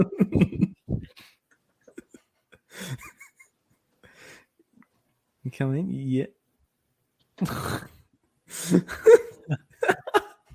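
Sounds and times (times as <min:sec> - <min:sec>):
speech: 0:00.0 - 0:00.6, 0:05.5 - 0:06.4, 0:07.4 - 0:07.9, 0:08.6 - 0:10.0
laughter: 0:00.0 - 0:01.1, 0:08.6 - 0:10.5
loud forceful breathing through the nose: 0:07.4 - 0:08.9.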